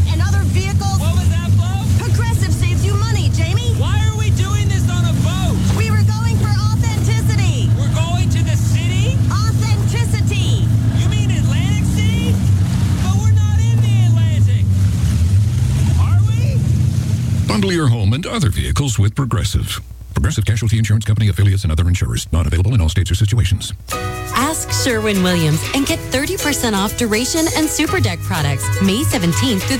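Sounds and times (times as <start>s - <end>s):
boat engine droning on the water: 0.0s - 21.0s, 23.8s - 29.7s
speech: 19.0s - 29.7s.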